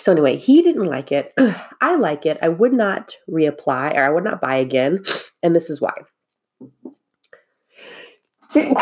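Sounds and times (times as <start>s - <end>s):
speech: 0.0s - 6.8s, 7.8s - 8.8s
breathy hissing intake: 7.7s - 8.2s
person sneezing: 8.5s - 8.8s.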